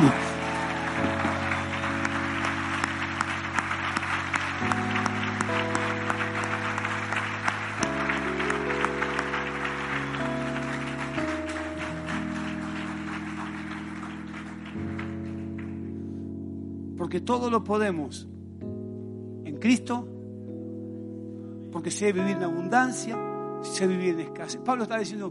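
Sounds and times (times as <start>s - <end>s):
crowd clapping at a church service: 0.0s - 16.0s
sustained organ-like keyboard chords: 0.0s - 25.3s
speech: 17.2s - 18.3s, 19.6s - 20.1s, 21.8s - 25.3s.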